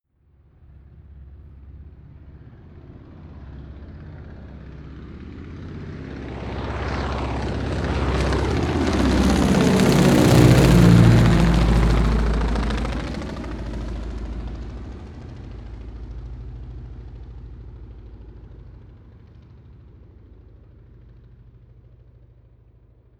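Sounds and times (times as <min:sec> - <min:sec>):
Ju 52 propeller plane flying overhead: 0:00.4 - 0:23.1.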